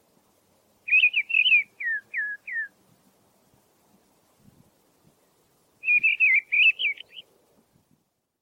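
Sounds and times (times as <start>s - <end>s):
mistle thrush singing downslurred fluty whistles and warbled phrases: 0.9s - 2.8s, 5.8s - 7.3s.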